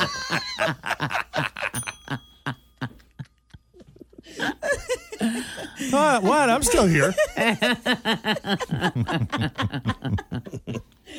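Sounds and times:
speech: 0:00.0 - 0:01.2, 0:06.0 - 0:10.9
people laughing: 0:00.0 - 0:11.1
small bell ringing: 0:01.7 - 0:03.8.

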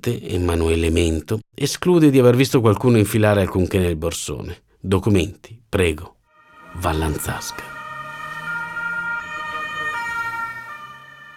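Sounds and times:
speech: 0:00.0 - 0:06.2, 0:06.8 - 0:07.7
police car siren wailing: 0:06.3 - 0:11.3
low rumble of road traffic: 0:06.5 - 0:11.3.

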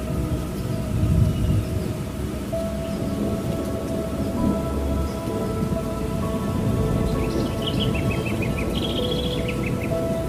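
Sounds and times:
meditation music: 0:00.0 - 0:10.2
thunderstorm: 0:00.0 - 0:10.2
birds: 0:00.4 - 0:10.2.

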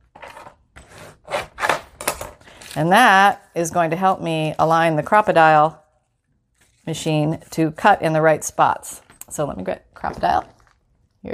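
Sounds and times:
speech: 0:02.8 - 0:05.8, 0:06.9 - 0:10.6
paper being folded back on itself against a crease: 0:06.1 - 0:07.6.

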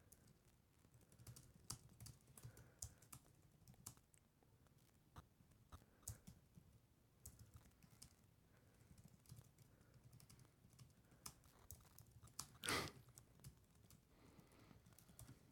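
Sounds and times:
typing on a computer keyboard: 0:00.0 - 0:04.1, 0:05.8 - 0:08.2, 0:08.8 - 0:14.0, 0:14.8 - 0:15.4.

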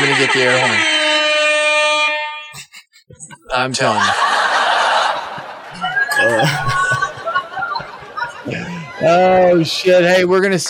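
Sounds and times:
laughter: 0:00.0 - 0:00.8, 0:02.6 - 0:09.6
loud sustained air horn blast: 0:00.0 - 0:02.5
speech: 0:00.2 - 0:01.0, 0:03.5 - 0:04.5, 0:06.2 - 0:06.8, 0:08.5 - 0:10.6.

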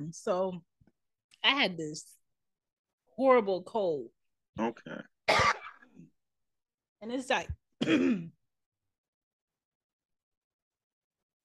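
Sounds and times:
speech: 0:00.0 - 0:00.7, 0:01.4 - 0:02.2, 0:03.2 - 0:05.6, 0:07.0 - 0:08.4
short dry cough: 0:05.2 - 0:06.1, 0:07.8 - 0:08.4.

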